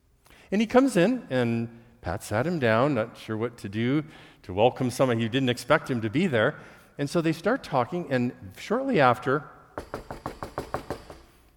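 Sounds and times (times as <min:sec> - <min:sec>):
speech: 0:00.5 - 0:10.1
urgent emergency knocking on a door: 0:09.8 - 0:11.3.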